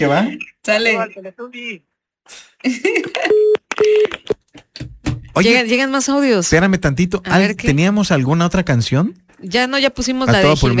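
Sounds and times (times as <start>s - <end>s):
speech: 0.0s - 10.7s
telephone dialing tones: 3.2s - 4.4s.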